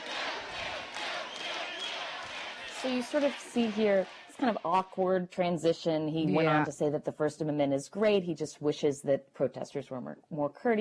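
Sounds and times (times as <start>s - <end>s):
large crowd cheering and shouting: 0.0s - 4.4s
speech: 2.8s - 10.7s.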